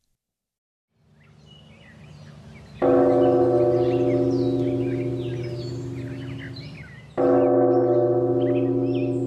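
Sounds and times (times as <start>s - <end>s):
faint birds chirping: 0.9s - 9.2s
large temple bell struck: 2.8s - 9.2s.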